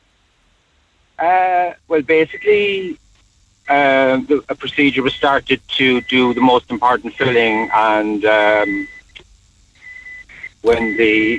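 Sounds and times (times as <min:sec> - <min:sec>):
high-pitched electronic beeping from a phone or alarm: 0:01.2 - 0:03.0, 0:03.7 - 0:09.2, 0:09.8 - 0:11.3
speech: 0:01.2 - 0:03.0, 0:03.7 - 0:09.0, 0:10.6 - 0:11.3.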